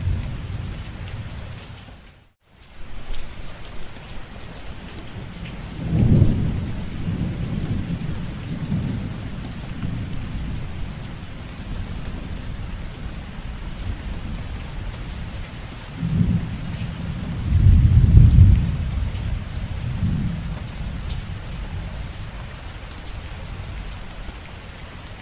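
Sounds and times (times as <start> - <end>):
low thunder rumbles: 0.0 - 1.8, 4.8 - 24.4
steady rain: 0.0 - 25.2.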